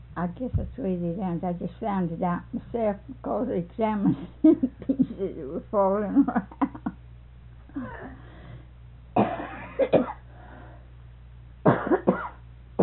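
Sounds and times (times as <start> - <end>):
speech: 0.2 - 6.8, 7.8 - 8.2
person coughing harshly: 9.2 - 10.2, 11.7 - 12.8.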